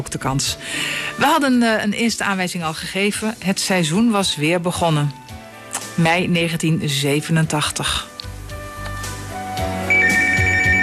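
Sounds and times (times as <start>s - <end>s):
speech: 0.0s - 5.2s, 6.0s - 8.1s
telephone ringing with an incoming call: 9.9s - 10.8s.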